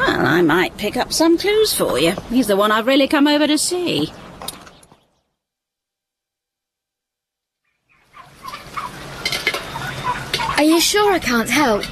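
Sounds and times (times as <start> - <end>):
speech: 0.2 - 4.2, 10.9 - 11.8
farm turkeys gobbling: 7.6 - 11.8
farm chickens clucking: 7.7 - 11.8.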